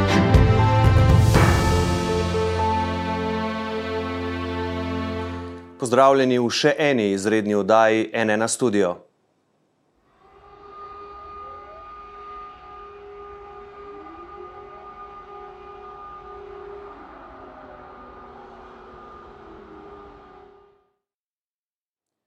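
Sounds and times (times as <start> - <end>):
civil defense air raid sirens wailing in Kyiv Ukraine: 0.2 - 5.6, 10.2 - 20.8
speech: 5.8 - 9.0.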